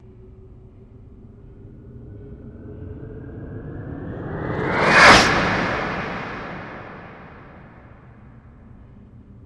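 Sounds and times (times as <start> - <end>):
starship whoosh: 1.1 - 7.9.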